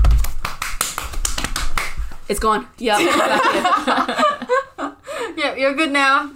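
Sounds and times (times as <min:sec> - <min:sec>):
sharp hand slaps: 0:00.0 - 0:02.3
speech: 0:02.3 - 0:04.3, 0:05.5 - 0:06.3
laughter: 0:02.9 - 0:05.0.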